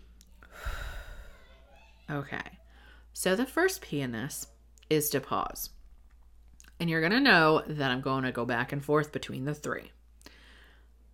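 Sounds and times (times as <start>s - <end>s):
deep breath drawn in through the nose: 0.5s - 1.4s
speech: 2.1s - 2.6s, 3.2s - 5.8s, 6.8s - 10.0s.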